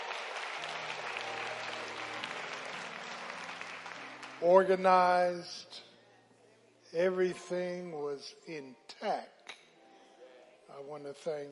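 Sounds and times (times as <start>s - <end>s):
large crowd applauding: 0.0s - 5.0s
speech: 4.4s - 5.9s, 6.9s - 9.4s, 10.7s - 11.5s.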